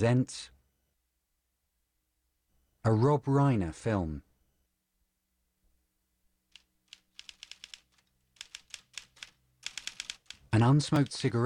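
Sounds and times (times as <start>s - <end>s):
speech: 0.0s - 0.6s, 2.8s - 4.3s, 10.5s - 11.4s
typewriter keys clacking: 6.5s - 11.3s.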